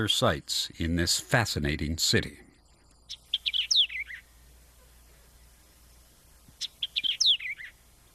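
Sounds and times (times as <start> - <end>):
speech: 0.0 - 2.4
faint low hum: 0.0 - 8.1
bird chirping, possibly spotted dove: 2.4 - 8.1.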